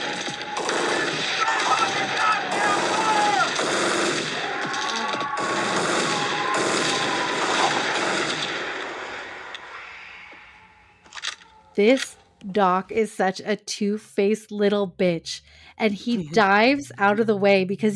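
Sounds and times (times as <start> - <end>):
gunfire from pistols and shotguns in a police shootout: 0.0 - 9.9
speech: 11.8 - 17.9.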